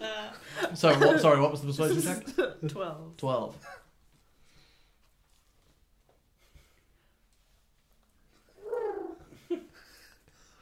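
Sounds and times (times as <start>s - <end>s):
speech: 0.7s - 3.8s
pigeon cooing: 8.5s - 9.3s.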